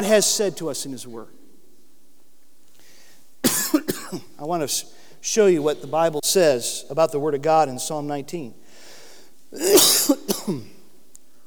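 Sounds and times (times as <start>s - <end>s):
speech: 0.0s - 1.4s, 4.1s - 8.6s, 9.5s - 10.7s
person coughing from a tickle in the throat: 3.4s - 4.3s, 9.6s - 10.9s.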